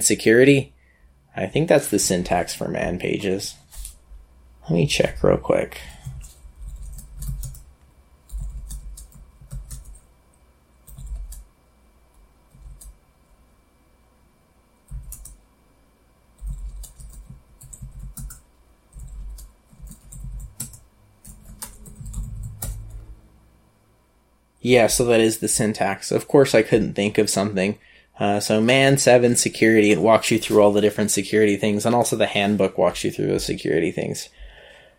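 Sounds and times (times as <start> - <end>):
speech: 0.0 - 0.8, 1.4 - 3.6, 4.7 - 6.0, 24.6 - 34.4
typing a terminal command on a FreeBSD computer keyboard: 6.0 - 10.1, 10.8 - 11.5, 12.5 - 13.0, 14.9 - 15.4, 16.4 - 23.1.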